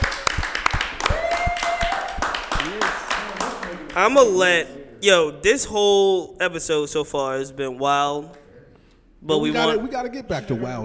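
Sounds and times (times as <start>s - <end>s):
several people clapping hands: 0.0s - 4.6s
person whooping: 1.0s - 2.8s
speech: 4.0s - 8.4s, 9.2s - 10.8s.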